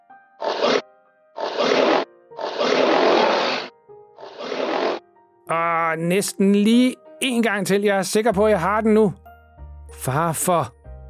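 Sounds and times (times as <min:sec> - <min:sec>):
recorded lion roar from a phone speaker: 0:01.4 - 0:05.0
speech: 0:05.5 - 0:09.2, 0:09.9 - 0:10.8.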